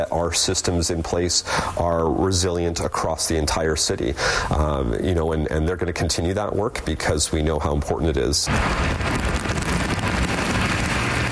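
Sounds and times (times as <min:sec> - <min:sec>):
speech: 0:00.0 - 0:09.1
low rumble: 0:08.5 - 0:11.3
steady dense rain falling: 0:08.5 - 0:11.3.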